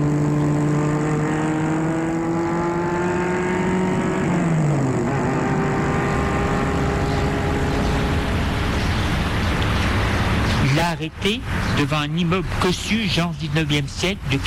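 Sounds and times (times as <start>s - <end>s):
chauffeur-driven car engine humming: 0.0s - 14.4s
dense road rumble: 0.0s - 14.4s
speech: 11.0s - 14.4s.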